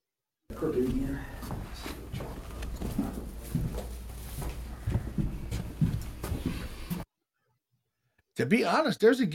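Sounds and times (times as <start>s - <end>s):
speech: 0.6s - 2.0s, 8.4s - 9.3s
footsteps thudding and scuffing in a played-back EVP recording: 0.9s - 7.1s.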